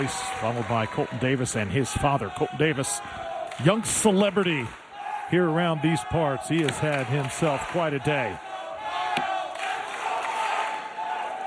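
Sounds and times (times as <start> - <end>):
speech: 0.0 - 8.5
large crowd roaring and cheering at a game: 0.0 - 11.4.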